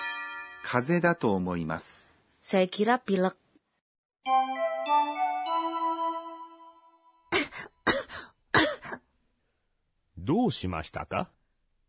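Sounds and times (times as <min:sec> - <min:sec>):
sustained ringing chime tone: 0:00.0 - 0:01.1, 0:04.2 - 0:07.3
speech: 0:00.6 - 0:03.4, 0:10.3 - 0:11.4
raspy coughs from a patient with a cold: 0:07.3 - 0:09.1.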